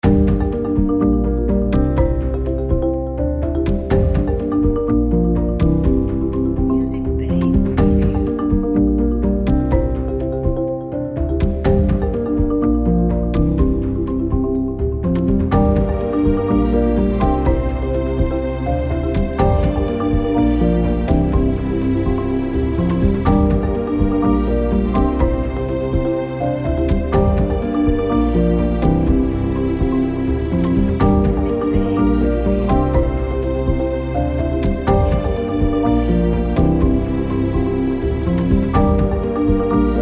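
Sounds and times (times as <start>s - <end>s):
cinematic documentary background marimba music: 0.0s - 40.0s.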